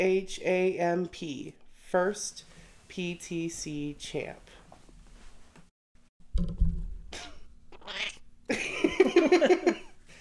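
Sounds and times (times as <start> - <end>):
speech: 0.0 - 4.6, 6.4 - 6.6, 9.3 - 9.8
low thumps: 6.3 - 7.2
cat meowing in disgust: 7.8 - 8.2.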